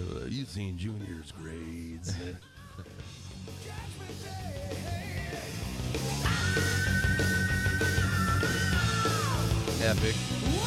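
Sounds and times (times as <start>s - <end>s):
speech: 0.4s - 6.7s, 9.8s - 10.6s
loud dense rock band mix: 2.8s - 10.6s
rock singer's long high sustained scream: 3.6s - 9.8s.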